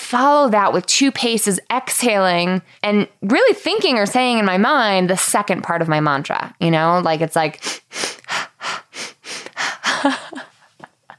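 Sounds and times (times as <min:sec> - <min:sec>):
speech: 0:00.1 - 0:07.9, 0:10.0 - 0:10.4
person sniffing sharply through the nose: 0:07.6 - 0:09.9.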